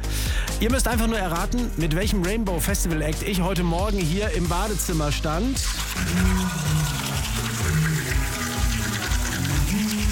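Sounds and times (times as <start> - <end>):
speech: 0.6 - 6.6
running water: 5.6 - 10.1
toothbrush scrubbing in a bathroom: 5.6 - 10.1.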